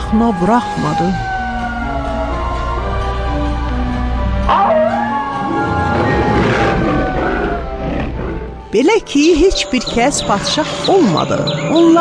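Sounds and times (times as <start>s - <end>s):
loud continuous music with steady sustained tones: 0.0s - 11.9s
speech: 0.1s - 1.3s, 8.7s - 11.9s
grey wolf howling: 4.5s - 8.7s.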